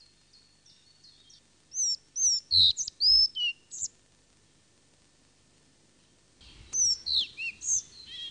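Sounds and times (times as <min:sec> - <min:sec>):
Collared flycatcher singing: 0:00.0 - 0:03.9, 0:06.4 - 0:08.3.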